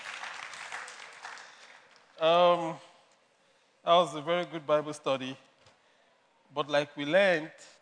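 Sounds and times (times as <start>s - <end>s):
group clapping applause: 0.0s - 2.2s
speech: 2.2s - 2.9s, 3.8s - 5.5s, 6.5s - 7.8s.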